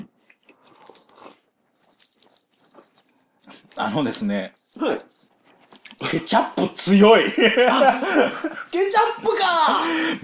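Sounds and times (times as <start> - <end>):
biting and chewing a soggy hamburger: 0.1 - 6.1
speech: 3.8 - 5.1, 6.1 - 10.2
laughter: 7.2 - 8.8.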